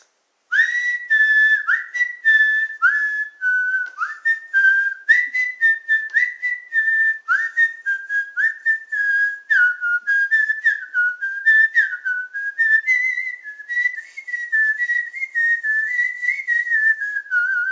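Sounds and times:
person whistling a melody: 0:00.5 - 0:17.6.

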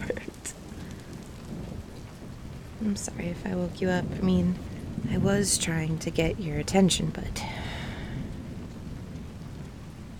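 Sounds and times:
heavy rain hissing: 0:00.0 - 0:10.1
low rolling thunder during rainstorm: 0:00.0 - 0:10.1
speech: 0:02.8 - 0:07.7.

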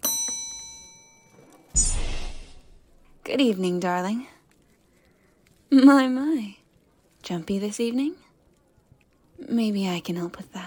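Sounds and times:
small bell tapped, bright clear ding: 0:00.0 - 0:01.4
speech: 0:03.3 - 0:04.4, 0:05.7 - 0:06.6, 0:07.3 - 0:08.2, 0:09.4 - 0:10.6.

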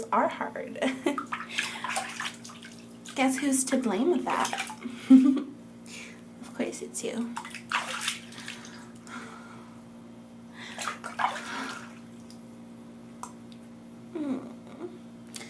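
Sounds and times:
speech: 0:00.1 - 0:01.7, 0:03.2 - 0:05.5, 0:06.6 - 0:07.6
water splashing as someone washes in a bath: 0:00.9 - 0:04.9, 0:07.2 - 0:09.0, 0:10.7 - 0:12.5.

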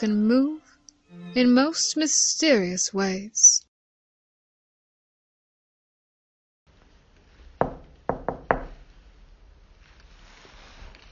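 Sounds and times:
speech: 0:00.0 - 0:03.7
sharp knocks on a door: 0:07.6 - 0:08.8
faint rustling: 0:08.8 - 0:11.0.

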